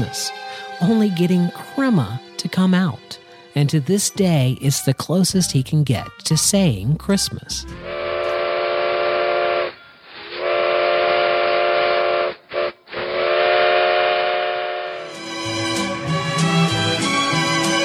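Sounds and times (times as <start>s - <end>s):
speech: 0.0s - 8.0s
steam train whistle as train arrives: 7.8s - 17.8s
rumbling hissing steam locomotive rolling in: 7.9s - 16.4s.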